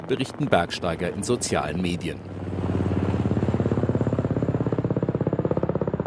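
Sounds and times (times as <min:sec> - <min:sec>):
helicopter flying from a mountaineering base camp: 0:00.0 - 0:06.0
speech: 0:00.1 - 0:02.8.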